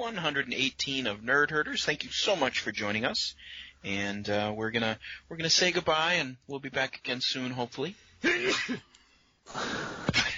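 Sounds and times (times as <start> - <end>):
speech: 0.0 - 10.3
person sneezing: 8.2 - 8.9.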